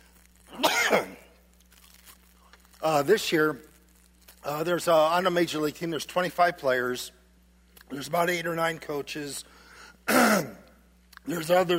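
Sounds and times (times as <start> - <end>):
quiet hum: 0.0 - 11.7
person coughing: 0.5 - 1.3, 10.1 - 10.6
speech: 0.9 - 1.2, 2.8 - 3.7, 4.4 - 7.2, 7.9 - 10.6, 11.2 - 11.7.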